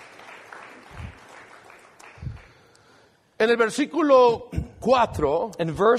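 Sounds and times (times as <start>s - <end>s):
large group clapping in worship in a roomy space: 0.0s - 2.9s
speech: 3.4s - 5.9s.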